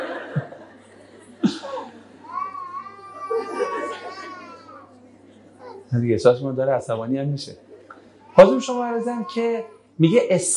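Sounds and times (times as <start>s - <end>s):
laughter: 0.0s - 2.3s, 3.0s - 4.9s
baby crying: 2.2s - 5.0s, 5.6s - 5.9s, 8.2s - 9.9s
speech: 5.9s - 7.7s, 8.4s - 10.5s.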